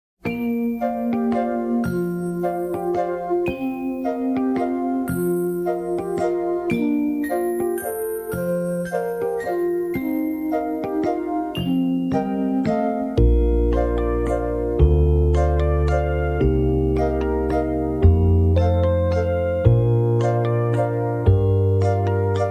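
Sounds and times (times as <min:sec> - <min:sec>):
slow waltz accompaniment without melody: 0:00.4 - 0:22.4.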